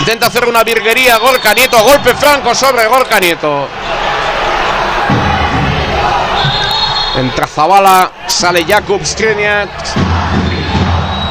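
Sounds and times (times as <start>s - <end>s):
large indoor supporters' club crowd cheering and chanting in a handball arena: 0.0s - 11.2s
speech: 0.1s - 4.1s, 7.2s - 10.5s
sharp high-pitched whistle: 6.4s - 7.3s, 10.5s - 11.2s.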